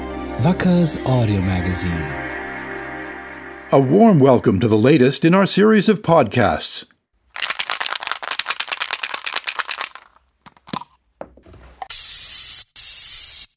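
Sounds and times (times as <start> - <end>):
speech: 0.4 - 2.2, 3.7 - 6.9
aerosol spray can rattling as it is shaken: 7.4 - 11.0, 11.9 - 13.5
aerosol spray can hissing for graffiti on a building: 11.9 - 13.5.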